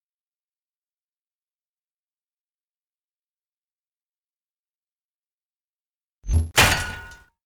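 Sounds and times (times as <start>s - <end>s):
metal corner pipe hit: 6.3s - 7.3s.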